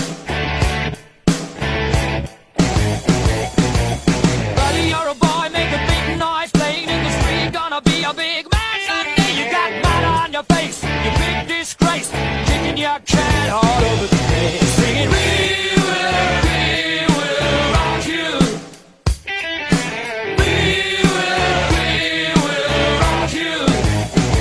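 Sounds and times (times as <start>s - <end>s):
rock songs: 0.0s - 24.3s.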